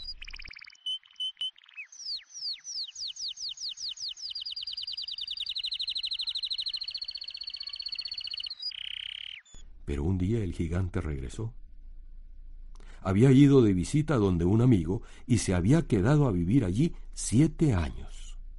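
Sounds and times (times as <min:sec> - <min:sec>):
songbird singing in a garden: 0:00.0 - 0:09.6
speech: 0:09.9 - 0:11.6, 0:13.0 - 0:18.1.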